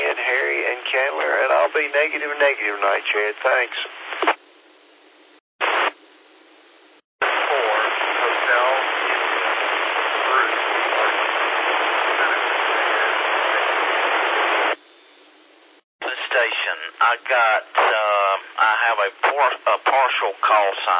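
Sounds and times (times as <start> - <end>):
person talking over a narrow tinny radio channel: 0.0 - 4.4, 7.2 - 14.1, 16.0 - 20.9
loud steady radio static hiss on an amateur radio net: 0.0 - 6.1, 6.9 - 20.9
speech: 1.0 - 4.4, 18.9 - 20.9.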